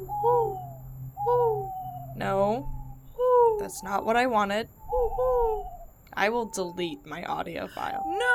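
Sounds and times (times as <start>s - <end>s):
owl hooting: 0.0s - 8.3s
steady low hum: 0.0s - 8.3s
speech: 2.3s - 2.8s, 3.6s - 8.3s.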